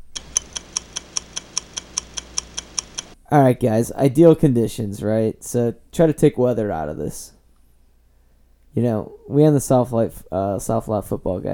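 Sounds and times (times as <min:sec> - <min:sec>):
clock ticking: 0:00.0 - 0:03.2
faint low hum: 0:00.0 - 0:11.5
speech: 0:03.3 - 0:07.4, 0:08.8 - 0:11.5.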